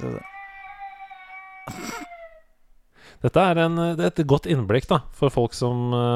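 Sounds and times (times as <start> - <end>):
sleeping baby girl whimpering and crying: 0.0 - 2.6
speech: 3.2 - 6.1.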